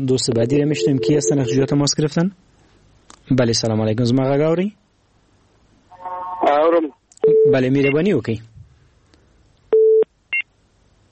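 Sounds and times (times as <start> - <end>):
speech: 0.0 - 2.5, 3.3 - 4.8, 6.4 - 8.5
electronic phone-line tones after a dropped call: 0.6 - 1.7.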